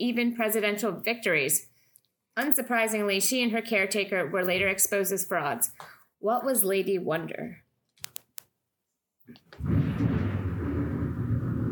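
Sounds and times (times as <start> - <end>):
speech: 0.0 - 1.7, 2.4 - 7.6, 9.3 - 9.8
thunder from a storm arriving at a house: 9.6 - 11.7.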